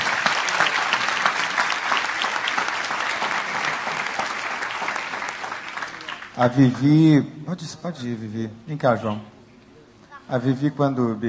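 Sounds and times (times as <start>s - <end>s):
large church audience applauding: 0.0s - 6.6s
speech: 6.4s - 9.4s, 10.3s - 11.2s.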